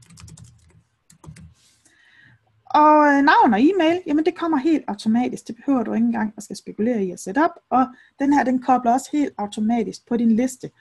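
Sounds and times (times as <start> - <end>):
typing on a computer keyboard: 0.0 - 1.6
speech: 2.7 - 10.7.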